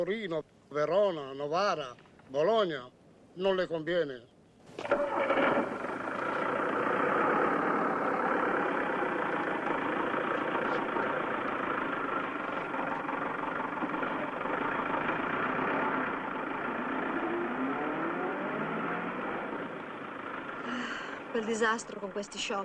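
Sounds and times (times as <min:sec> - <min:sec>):
speech: 0:00.0 - 0:05.3, 0:21.4 - 0:22.6
heavy engines of replacement buses idling: 0:04.7 - 0:22.6.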